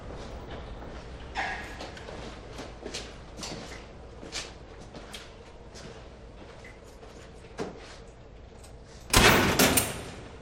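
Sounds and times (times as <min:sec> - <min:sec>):
busy noise: 0:00.0 - 0:10.4
heavy prison door clanking and rattling open: 0:09.1 - 0:10.3.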